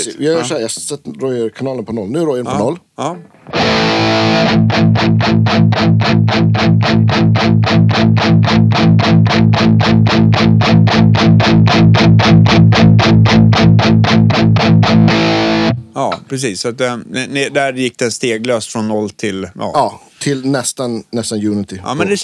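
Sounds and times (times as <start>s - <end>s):
speech: 0.0s - 13.4s, 16.0s - 22.2s
distorted electric guitar chugging palm-muted on an A chord: 3.5s - 15.8s.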